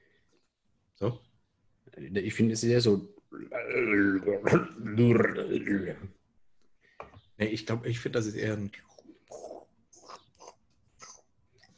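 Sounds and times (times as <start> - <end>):
speech: 1.0 - 1.3, 1.9 - 6.2, 7.4 - 8.9
voice imitating a stomach gurgling before diarrhea: 3.3 - 5.8, 9.0 - 11.3.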